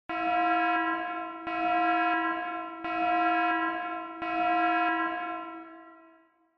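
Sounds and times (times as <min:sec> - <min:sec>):
slow warning siren with reverb: 0:00.1 - 0:06.2.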